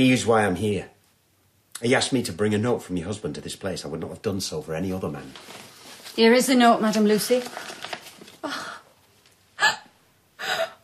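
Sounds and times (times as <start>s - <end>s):
speech: 0.0s - 0.9s, 1.8s - 8.6s
woman sobbing with ragged gasping breaths: 8.4s - 9.0s, 9.6s - 10.8s.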